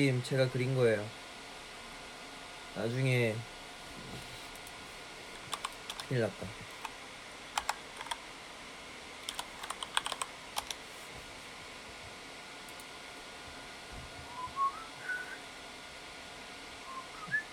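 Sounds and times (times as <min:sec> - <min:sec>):
speech: 0:00.0 - 0:01.2, 0:02.8 - 0:04.3, 0:06.1 - 0:06.7
steady fan-like hum: 0:00.0 - 0:17.5
computer keyboard typing clicks: 0:05.4 - 0:07.0, 0:07.6 - 0:08.2, 0:09.2 - 0:10.8
faint rising whistle-like tone: 0:14.3 - 0:15.4.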